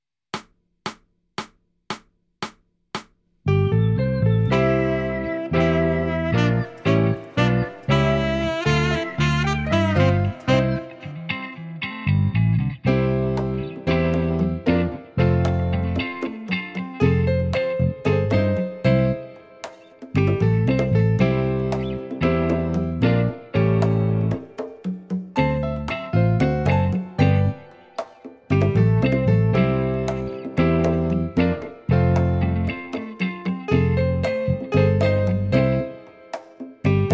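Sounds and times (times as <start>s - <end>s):
film noir backing music: 3.8s - 11.7s, 12.9s - 37.1s.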